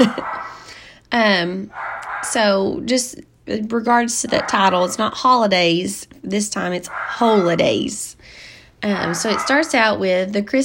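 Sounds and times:
speech: 0.0s - 0.3s, 1.1s - 10.6s
dog barking: 0.0s - 0.6s, 1.7s - 2.4s, 4.3s - 5.0s, 6.9s - 7.8s, 9.0s - 9.8s.

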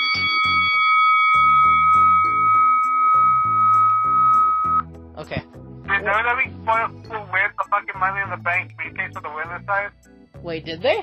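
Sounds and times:
bell ringing with a bright sustained metallic tone: 0.0s - 4.8s
speech: 6.1s - 7.2s, 8.1s - 11.0s.

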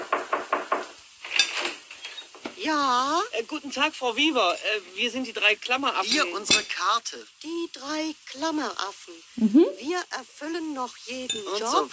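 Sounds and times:
knocking on a door: 0.0s - 1.0s
speech: 2.6s - 11.9s.

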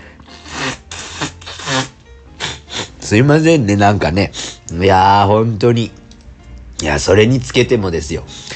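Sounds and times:
person blowing nose into a tissue: 0.0s - 3.1s, 4.3s - 4.7s
speech: 3.1s - 6.0s, 6.8s - 8.4s.

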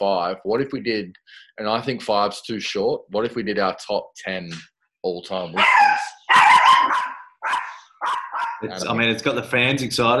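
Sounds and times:
speech: 0.0s - 6.6s, 8.6s - 10.1s
dog barking: 5.6s - 8.6s
laughter: 8.6s - 9.5s.

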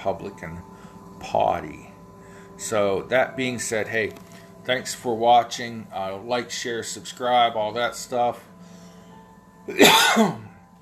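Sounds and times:
speech: 0.0s - 1.9s, 2.6s - 8.5s, 9.7s - 10.4s
quiet hum: 0.0s - 10.8s
harsh raspy cough caused by cigar smoke: 9.7s - 10.5s.

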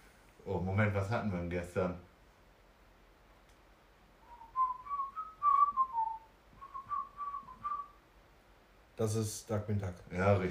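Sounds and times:
speech: 0.4s - 2.1s, 9.0s - 10.5s
person whistling a short melody: 4.2s - 8.0s.

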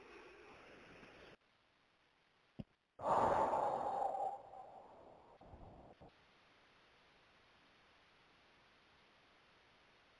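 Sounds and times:
person breathing deeply: 3.0s - 5.4s.

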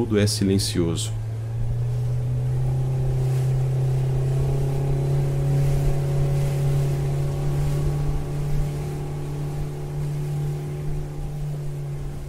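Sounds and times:
speech: 0.0s - 1.2s
speedboat engine droning across a lake: 0.0s - 12.2s
wash of rushing water on a lake: 0.0s - 12.2s.

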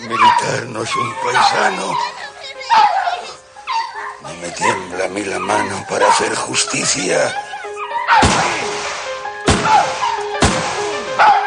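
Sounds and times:
speech: 0.1s - 3.0s, 4.3s - 7.5s, 8.1s - 8.8s
gunshots: 8.2s - 11.4s.

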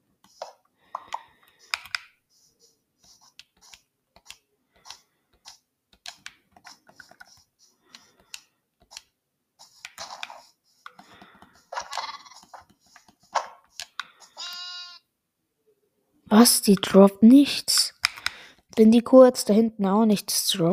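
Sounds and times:
clicky scraping in-game noises and taps: 0.2s - 15.0s, 17.7s - 18.8s
high harmonic video game lamb bleat: 14.4s - 15.0s
speech: 16.4s - 17.8s, 18.8s - 20.7s.

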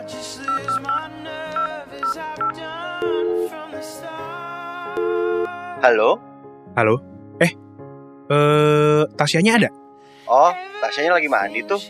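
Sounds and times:
electronic telephone tones as a call is dialed: 0.5s - 3.6s, 4.9s - 5.5s
speech: 5.8s - 7.6s, 8.3s - 8.6s, 9.2s - 11.8s.

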